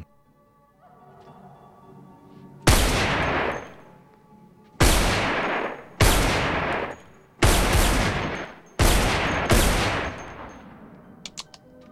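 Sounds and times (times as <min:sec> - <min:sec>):
gunshots fired through a partition wall: 0:02.7 - 0:04.0, 0:04.8 - 0:11.5
faint clicks: 0:10.2 - 0:11.8.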